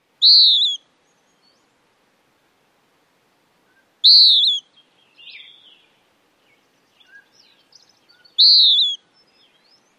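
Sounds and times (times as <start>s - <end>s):
western wood-pewee calling: 0.2s - 1.6s, 3.6s - 9.9s.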